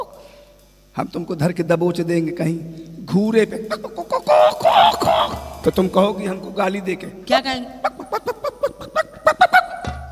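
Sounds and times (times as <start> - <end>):
speech: 1.0 - 8.4
laughter: 3.4 - 10.1
voice imitating a hen clucking: 3.6 - 6.2, 7.8 - 9.9.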